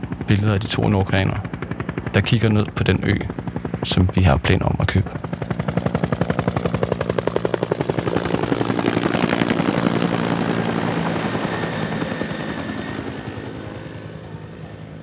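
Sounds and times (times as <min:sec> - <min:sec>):
helicopter rotor blades thudding while landing: 0:00.0 - 0:15.0
speech: 0:00.3 - 0:01.5, 0:02.1 - 0:05.3.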